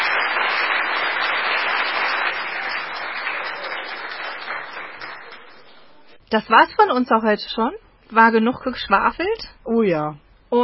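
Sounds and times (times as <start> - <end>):
crowd applauding: 0.0 - 6.2
speech: 6.3 - 10.6.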